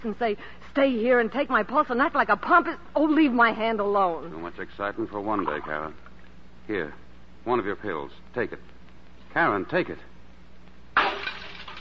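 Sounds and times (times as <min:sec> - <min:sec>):
speech: 0:00.0 - 0:06.0, 0:06.7 - 0:08.7, 0:09.3 - 0:10.1
glass smashing: 0:11.0 - 0:11.7.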